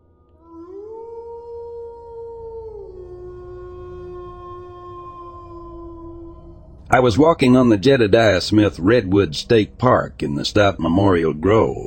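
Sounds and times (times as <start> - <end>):
low rumbling background: 0.0 - 11.8
coydogs howling: 0.4 - 9.2
speech: 6.9 - 11.8.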